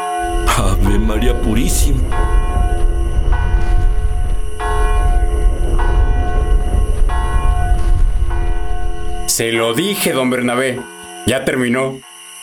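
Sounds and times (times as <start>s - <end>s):
heavy continuous low rumble: 0.0s - 9.7s
church bells ringing: 0.0s - 12.4s
speech: 0.9s - 2.4s, 9.3s - 12.1s.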